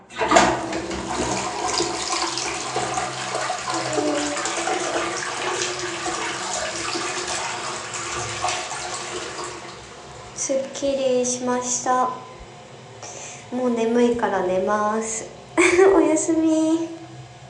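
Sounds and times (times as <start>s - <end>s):
toilet flushing: 0.0s - 10.5s
speech: 11.3s - 12.2s, 13.5s - 17.0s.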